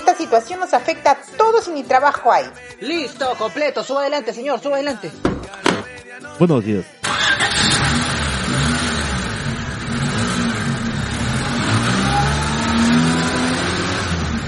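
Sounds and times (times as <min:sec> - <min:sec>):
speech: 0:00.2 - 0:05.3, 0:06.2 - 0:07.0
car engine of an informal passenger transport vehicle starting and pulling away: 0:07.0 - 0:14.4.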